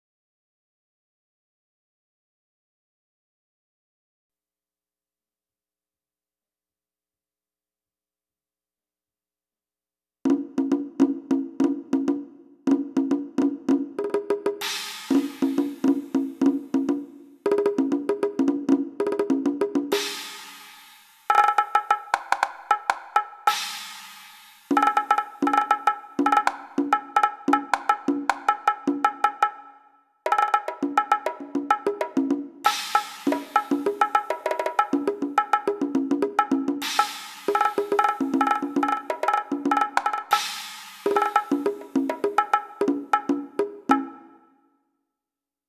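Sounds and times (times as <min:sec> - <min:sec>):
percussion: 0:10.3 - 0:44.5.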